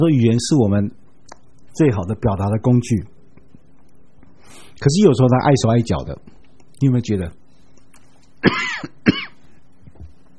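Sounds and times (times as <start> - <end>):
speech: 0.0 - 1.0, 1.8 - 3.1, 4.8 - 7.4, 8.4 - 9.0
person clearing throat: 8.4 - 9.4.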